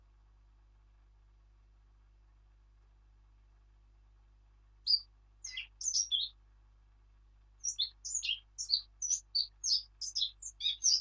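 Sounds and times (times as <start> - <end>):
Eurasian blackcap Sylvia atricapilla singing high notes and varied warbling: 4.8 - 6.4, 7.6 - 10.9.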